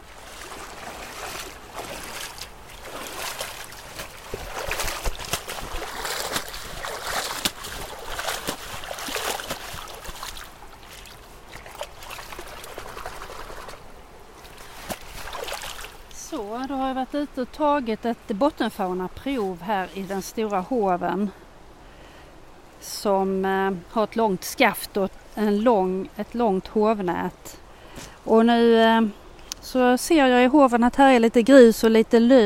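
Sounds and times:
water sloshing and splashing as someone wades in a stream: 0:00.0 - 0:16.6, 0:18.8 - 0:21.0
churning water from a long-handled net sweeping the stream bottom: 0:00.0 - 0:21.3
speech: 0:17.1 - 0:21.4, 0:23.0 - 0:27.6, 0:28.2 - 0:32.4.

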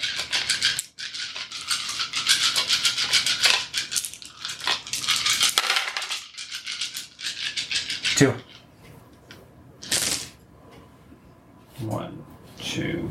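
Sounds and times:
dice rolled for a tabletop role-playing game clattering: 0:00.0 - 0:08.3, 0:09.8 - 0:10.3
speech: 0:08.2 - 0:08.5, 0:11.8 - 0:13.1.

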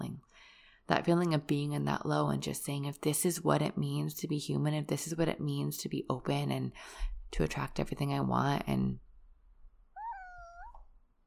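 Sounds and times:
speech: 0:00.9 - 0:09.0
pet cat meowing into a microphone: 0:10.0 - 0:10.9.

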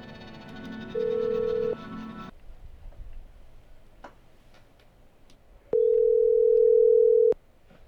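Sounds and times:
telephone line dial tone: 0:01.0 - 0:01.8, 0:05.8 - 0:07.4.

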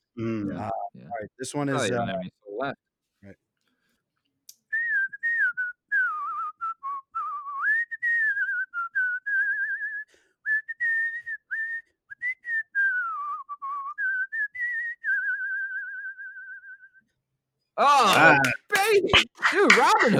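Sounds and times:
speech: 0:00.2 - 0:03.4, 0:19.8 - 0:20.1
person whistling a movie tune: 0:04.7 - 0:17.0
burst of laughter or chatter: 0:17.9 - 0:20.1.

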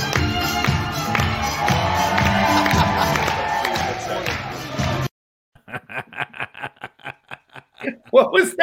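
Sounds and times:
crowd cheering while being warmed up: 0:00.1 - 0:05.1
laughter: 0:02.3 - 0:04.2, 0:05.6 - 0:08.6.

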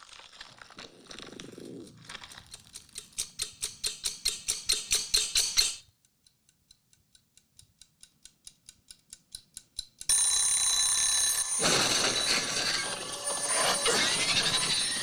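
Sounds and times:
small mechanical timer ticking: 0:02.4 - 0:11.6
loud continuous metallic timer bell ringing: 0:10.1 - 0:15.0.

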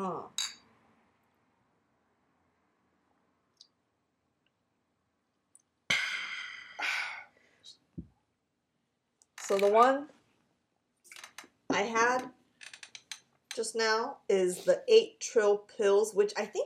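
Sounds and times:
glasses clinking in a toast: 0:00.4 - 0:00.6
soft breathy sounds: 0:05.9 - 0:08.0
speech: 0:09.5 - 0:10.2, 0:11.8 - 0:12.4, 0:13.6 - 0:16.6.

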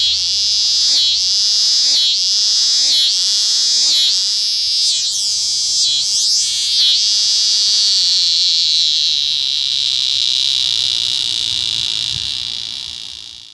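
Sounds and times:
scissors grinder cicada singing: 0:00.0 - 0:13.5.

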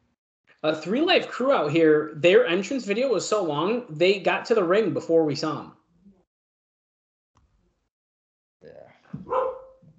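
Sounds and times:
speech: 0:00.6 - 0:05.8
pet dog barking: 0:09.2 - 0:09.8.

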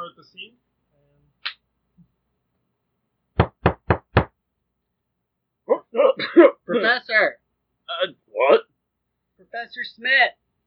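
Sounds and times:
firm knocking on a door: 0:03.4 - 0:04.3
single sharp tap: 0:03.4 - 0:04.3
speech: 0:06.8 - 0:07.4, 0:08.0 - 0:08.6, 0:09.5 - 0:10.4.

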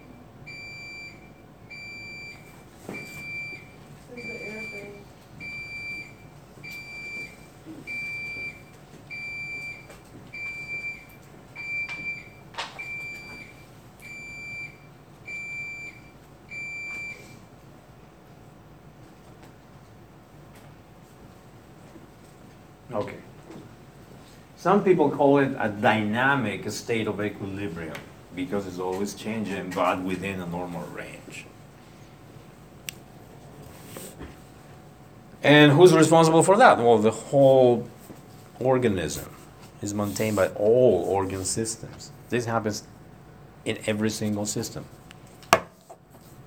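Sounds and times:
electronic alarm beeping from building system: 0:00.0 - 0:17.4
speech: 0:22.9 - 0:23.2, 0:24.6 - 0:31.5, 0:35.5 - 0:38.0, 0:38.6 - 0:42.9, 0:43.6 - 0:45.0.

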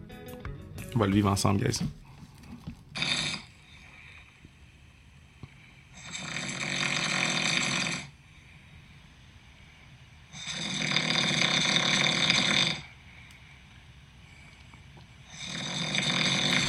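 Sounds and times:
speech: 0:01.0 - 0:02.0
man snoring loudly while asleep: 0:03.0 - 0:03.8, 0:06.0 - 0:08.2, 0:10.3 - 0:13.0, 0:15.3 - 0:16.6.

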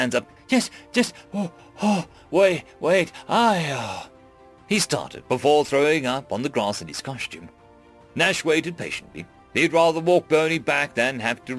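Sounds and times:
speech: 0:00.0 - 0:04.1, 0:04.7 - 0:07.6, 0:08.2 - 0:11.5
voice imitating heavy gasping breaths after running: 0:00.7 - 0:02.3.

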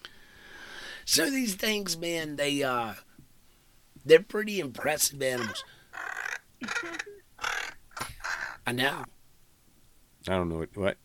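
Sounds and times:
speech: 0:01.1 - 0:03.1, 0:04.0 - 0:07.2, 0:08.7 - 0:09.2, 0:10.2 - 0:11.0
crow cawing: 0:05.4 - 0:08.7.

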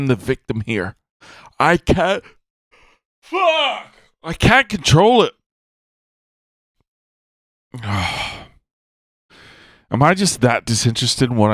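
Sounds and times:
speech: 0:00.0 - 0:02.4, 0:03.2 - 0:05.4, 0:07.7 - 0:08.3, 0:09.9 - 0:11.5
person yawning: 0:07.8 - 0:08.6.

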